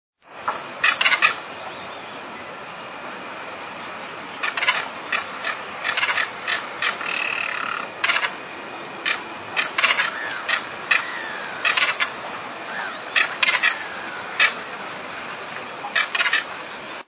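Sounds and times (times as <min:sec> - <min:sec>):
caracara calling: 0:00.8 - 0:02.2, 0:04.3 - 0:17.0.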